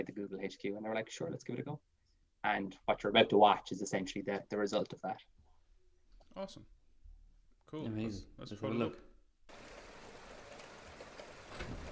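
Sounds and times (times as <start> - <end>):
speech: 0.1 - 5.4, 6.4 - 6.8, 7.7 - 9.1
faint steady rain falling: 9.5 - 11.8.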